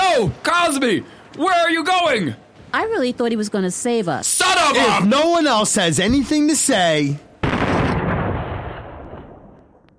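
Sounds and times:
speech: 0:00.1 - 0:07.3
gunshot with deep rumbling tail: 0:07.4 - 0:09.8.

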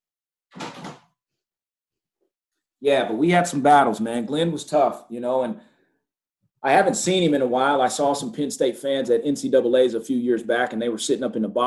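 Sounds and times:
door opening with a creaking scrape: 0:00.5 - 0:01.1
speech: 0:02.8 - 0:05.7, 0:06.6 - 0:11.6.

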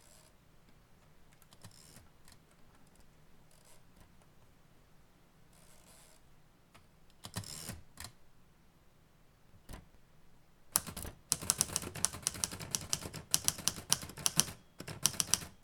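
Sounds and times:
keystrokes on a keyboard: 0:10.8 - 0:15.6.

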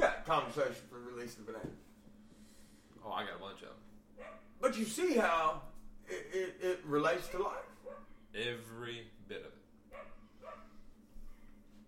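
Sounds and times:
steady low electrical hum: 0:00.0 - 0:11.8
speech: 0:00.3 - 0:01.9, 0:03.0 - 0:10.1
neighbor's dog barking: 0:04.2 - 0:04.6, 0:07.3 - 0:08.2, 0:09.9 - 0:10.8.

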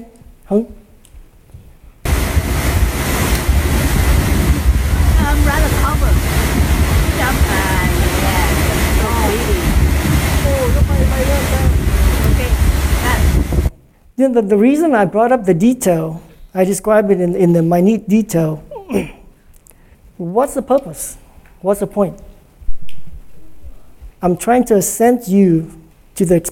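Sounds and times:
speech: 0:00.0 - 0:00.8, 0:14.3 - 0:19.2, 0:20.2 - 0:22.3, 0:24.2 - 0:26.5
waterfall rushing on a cloudy evening: 0:02.1 - 0:13.7.

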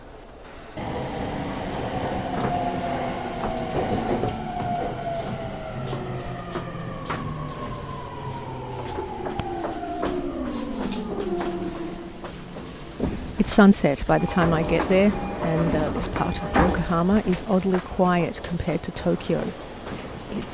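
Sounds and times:
steady rumble inside a moving non-express Tokyo commuter train: 0:00.0 - 0:20.5
gliding tonal whines from commuter train motors: 0:00.8 - 0:13.4, 0:14.0 - 0:18.0
wheels clicking over rail joints: 0:00.8 - 0:20.5
speech: 0:13.6 - 0:19.7, 0:20.3 - 0:20.5.

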